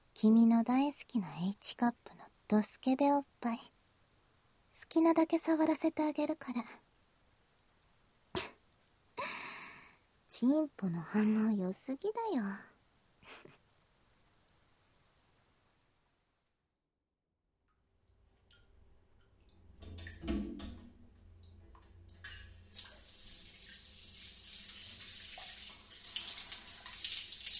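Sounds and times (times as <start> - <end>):
speech: 0.2 - 3.8, 4.9 - 6.8, 10.4 - 12.7
hot water running from a shower: 18.4 - 27.5.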